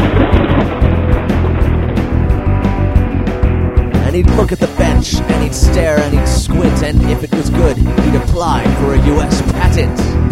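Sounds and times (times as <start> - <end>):
heavy rolling thunder from a lightning storm: 0.0 - 4.0
speech: 4.4 - 10.2.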